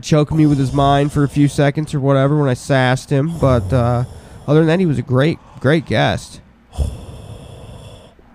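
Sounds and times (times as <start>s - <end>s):
speech: 0.0s - 7.0s
person snoring: 0.4s - 1.7s, 3.3s - 5.7s, 6.7s - 8.3s.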